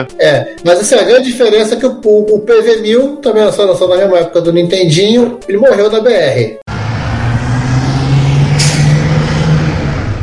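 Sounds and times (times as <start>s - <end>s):
speech: 0.0s - 6.6s
truck engine droning: 6.7s - 10.2s.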